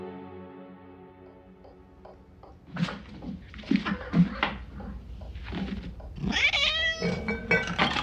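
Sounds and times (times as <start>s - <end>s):
clattering: 1.6s - 8.0s
cat meowing: 6.2s - 7.4s.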